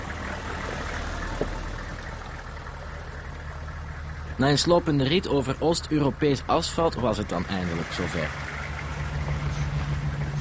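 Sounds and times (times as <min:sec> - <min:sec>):
fully loaded truck engine droning while driving: 0:00.0 - 0:10.3
speech: 0:04.4 - 0:08.5.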